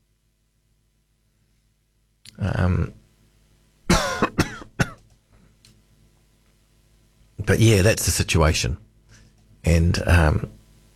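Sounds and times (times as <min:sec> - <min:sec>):
speech: 0:02.4 - 0:03.0, 0:07.5 - 0:08.9, 0:09.6 - 0:10.6
low rasping throat clearing: 0:03.9 - 0:05.0
sharp loud coughs: 0:03.9 - 0:05.0.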